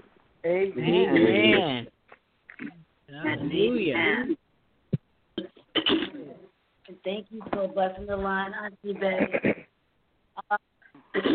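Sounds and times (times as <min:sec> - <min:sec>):
speech: 0:00.4 - 0:01.9, 0:03.2 - 0:04.4, 0:07.0 - 0:09.7
person clearing throat: 0:05.4 - 0:06.4, 0:09.1 - 0:09.7, 0:11.1 - 0:11.3.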